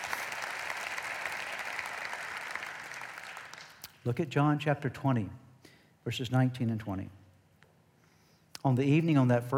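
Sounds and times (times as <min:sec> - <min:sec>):
audience applause: 0:00.0 - 0:03.9
speech: 0:04.0 - 0:05.4, 0:06.0 - 0:07.2, 0:08.6 - 0:09.5.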